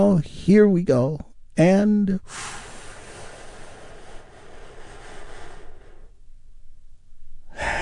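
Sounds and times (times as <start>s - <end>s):
speech: 0.0s - 2.6s
deep breath in and slow release: 2.2s - 6.4s, 7.4s - 7.8s.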